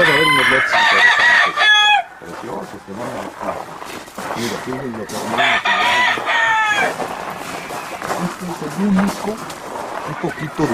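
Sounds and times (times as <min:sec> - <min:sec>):
rooster crowing: 0:00.0 - 0:02.7, 0:04.5 - 0:08.0, 0:10.0 - 0:10.7
chickens clucking: 0:00.0 - 0:10.7
speech: 0:08.8 - 0:10.7.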